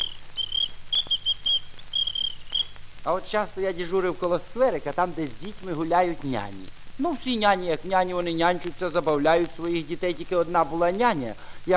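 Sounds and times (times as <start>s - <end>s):
small ladies' whistle blown by a traffic officer: 0.0s - 2.8s
speech: 3.1s - 11.7s.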